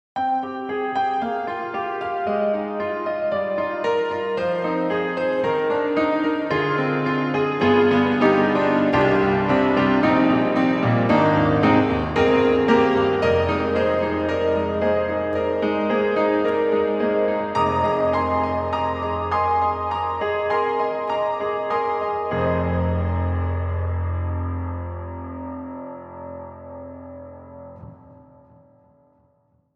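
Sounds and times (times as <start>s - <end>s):
piano with multiple effects: 0.2s - 29.7s.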